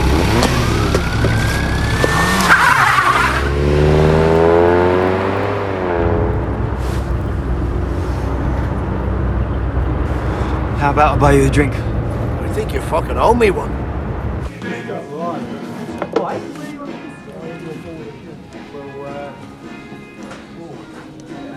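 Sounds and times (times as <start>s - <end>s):
car engine revving hard as the car races away: 0.0s - 14.5s
speech: 11.0s - 12.0s, 12.7s - 13.8s.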